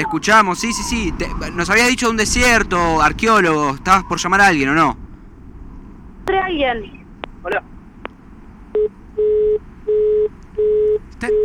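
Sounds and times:
speech: 0.0 - 5.0, 6.3 - 7.7, 11.2 - 11.4
faint noise: 0.0 - 11.4
telephone tone after a phone call is cut off: 8.8 - 11.4.

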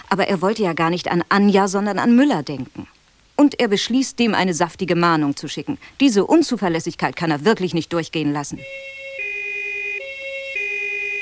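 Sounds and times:
speech: 0.1 - 8.9
two-tone emergency vehicle siren: 8.6 - 11.2.

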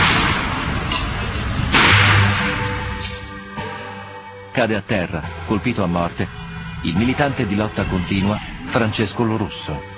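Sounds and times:
gunshot fired by police during street clashes: 0.0 - 0.7, 1.7 - 2.9
speech: 4.6 - 9.9.

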